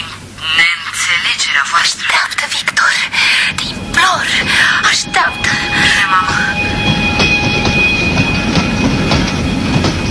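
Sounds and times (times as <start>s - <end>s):
passing train rumble: 0.0s - 10.0s
thin metallic whine of passing train: 2.7s - 10.0s
passing train wheels clattering over rail joints: 4.2s - 10.0s.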